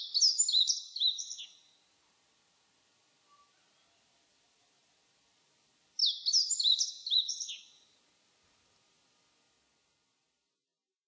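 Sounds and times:
Meadow bunting singing high chirping phrases: 0.0s - 1.8s, 6.0s - 7.9s.

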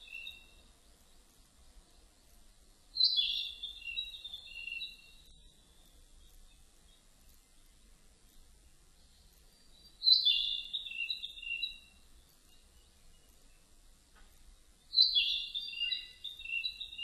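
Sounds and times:
narcissus flycatcher whistled song: 0.0s - 0.6s, 3.0s - 5.2s, 9.6s - 13.3s, 14.9s - 17.0s
steady quiet hiss: 0.0s - 17.0s.

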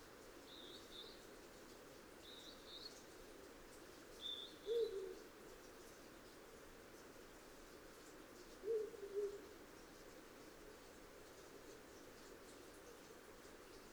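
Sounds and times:
steady background hiss: 0.0s - 13.9s
Ural owl low two-part hoots: 8.6s - 9.4s.

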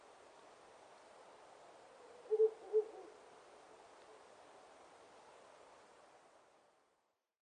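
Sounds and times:
faint background hiss: 0.0s - 7.4s
Ural owl hooting: 2.0s - 3.2s.

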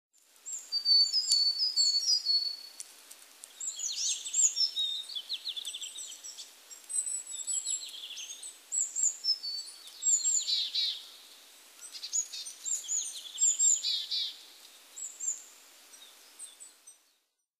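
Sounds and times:
willow tit calling: 0.4s - 2.7s, 3.5s - 11.2s, 11.8s - 17.0s.

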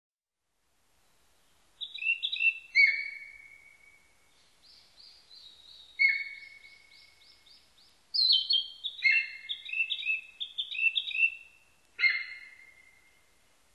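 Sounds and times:
Narcissus flycatcher singing clear whistles and warbled notes: 1.8s - 4.0s, 4.7s - 7.6s, 8.2s - 11.4s.

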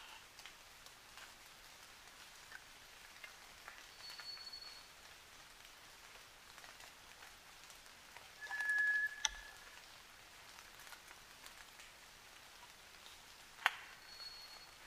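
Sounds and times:
soft hiss: 0.0s - 14.8s
drips and ticks: 0.1s - 14.8s
White's thrush singing at night: 8.4s - 9.6s.

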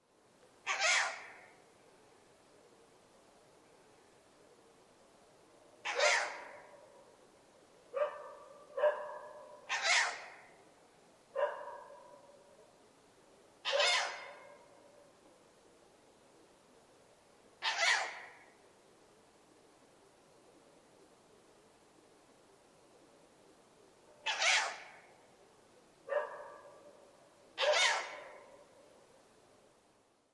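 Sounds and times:
owl: 0.6s - 1.7s, 5.8s - 7.0s, 8.0s - 10.6s, 13.6s - 15.4s, 17.6s - 18.6s, 24.2s - 25.4s, 26.2s - 29.2s.

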